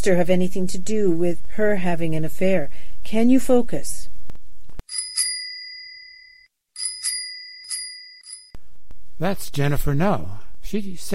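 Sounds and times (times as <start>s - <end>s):
speech: 0.0s - 4.1s, 9.2s - 11.1s
bicycle bell ringing: 4.9s - 8.6s.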